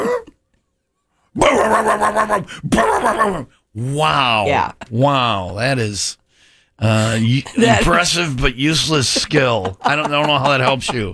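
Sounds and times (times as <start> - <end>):
person imitating a dog with a woof-like howl: 1.4 - 4.8
laughter: 1.4 - 5.6, 6.8 - 11.1
speech: 1.4 - 6.2, 6.8 - 11.1.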